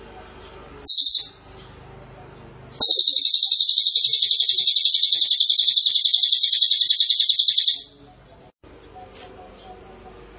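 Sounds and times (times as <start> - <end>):
cililin bird song as a piercing trill: 0.9 - 1.4, 2.8 - 7.9.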